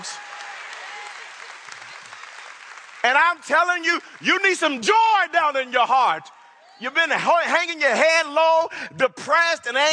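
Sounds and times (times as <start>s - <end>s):
audience applauding: 0.0s - 5.8s
speech: 3.0s - 9.9s.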